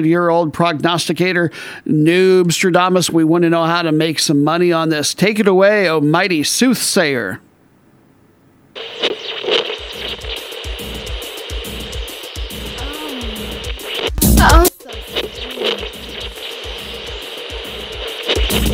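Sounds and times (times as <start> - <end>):
speech: 0.0 - 7.5, 8.8 - 9.6
crackling radio static and hiss: 0.0 - 18.7
loud broadband interference blast: 8.8 - 18.7.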